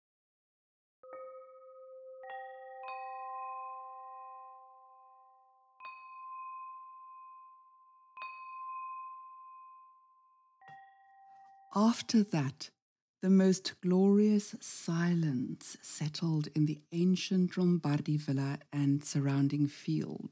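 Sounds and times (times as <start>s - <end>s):
bell ringing: 1.1s - 10.0s
speech: 11.8s - 20.3s.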